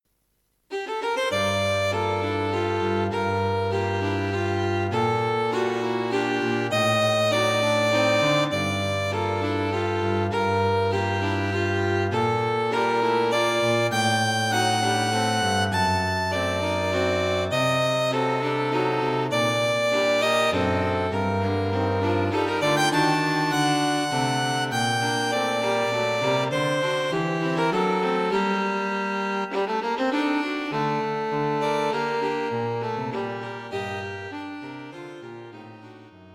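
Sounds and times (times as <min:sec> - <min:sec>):
gentle night-time piece for string quartet: 0:00.7 - 0:36.2.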